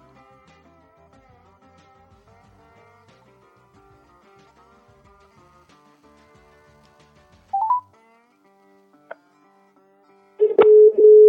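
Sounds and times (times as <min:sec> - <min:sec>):
phone dialing beeps: 0:07.6 - 0:07.8, 0:10.4 - 0:11.2.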